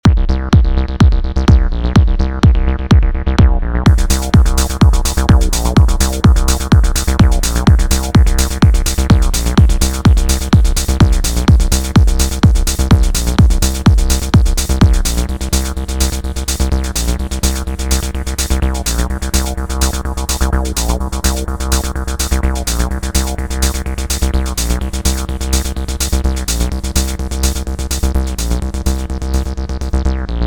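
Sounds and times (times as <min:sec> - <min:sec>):
90s acid techno music: 0:00.0 - 0:30.4.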